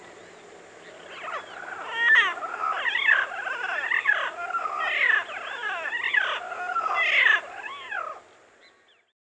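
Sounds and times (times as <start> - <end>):
parrots calling in a dense chorus of harsh squawky warbling notes: 1.0 - 8.2.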